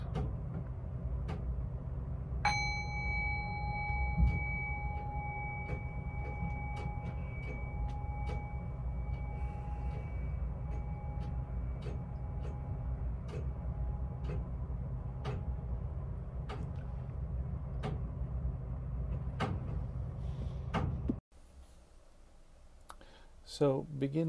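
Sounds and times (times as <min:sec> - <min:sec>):
steady low rumble: 0:00.0 - 0:24.2
meditation bell struck to close meditation: 0:02.4 - 0:14.3
speech: 0:23.6 - 0:24.2.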